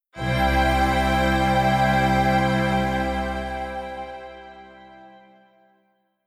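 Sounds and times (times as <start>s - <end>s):
open strings: 0.2s - 5.4s.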